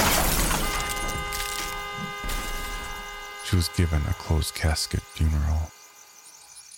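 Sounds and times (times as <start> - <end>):
glass shattering: 0.0 - 3.0
car crashing into pole: 0.0 - 3.2
speech: 3.5 - 5.8.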